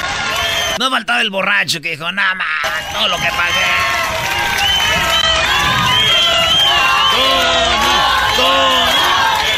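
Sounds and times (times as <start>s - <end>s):
concert audience cheering and shouting: 0.0s - 1.0s, 2.4s - 9.5s
speech: 0.8s - 5.1s.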